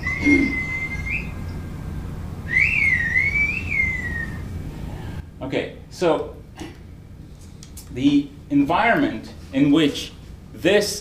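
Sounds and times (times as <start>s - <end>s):
long piercing human whistles of whistled language: 0.0s - 1.6s, 2.5s - 4.6s
speech: 0.2s - 0.6s, 5.5s - 6.4s, 8.0s - 10.9s.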